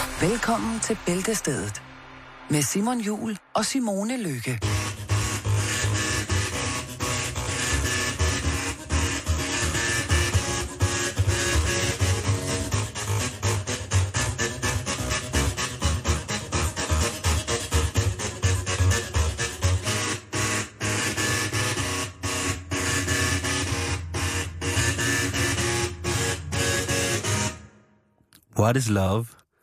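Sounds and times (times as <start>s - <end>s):
speech: 0.2s - 1.9s, 2.5s - 4.9s, 28.7s - 29.4s
printer mechanism playing an old pop song melody: 4.6s - 27.6s.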